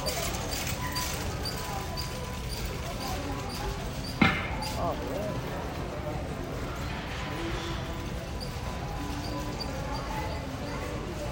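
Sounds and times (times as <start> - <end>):
chatter of customers and employees: 0.0 - 11.3
shopping carts and baskets rolling across a store floor: 0.0 - 11.3.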